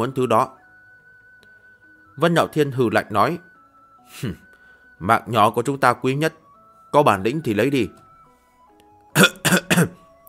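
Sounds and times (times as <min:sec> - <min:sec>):
speech: 0:00.0 - 0:00.6, 0:02.2 - 0:03.5, 0:04.1 - 0:04.4, 0:05.0 - 0:08.0, 0:09.2 - 0:10.0
man coughing: 0:09.2 - 0:10.0.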